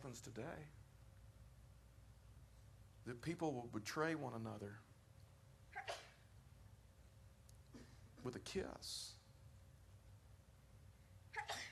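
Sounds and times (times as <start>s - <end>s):
speech: 0.0s - 0.8s, 3.0s - 4.9s, 8.2s - 9.2s
low steady room hum: 0.0s - 11.7s
single sneeze: 5.7s - 6.3s, 11.3s - 11.7s.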